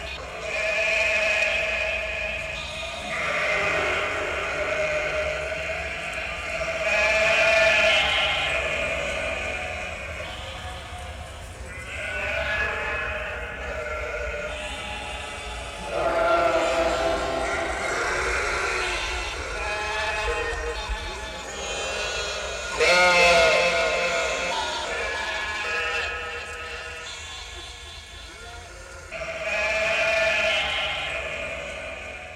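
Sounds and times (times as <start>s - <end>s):
large flock of sheep bleating: 0.0s - 32.3s.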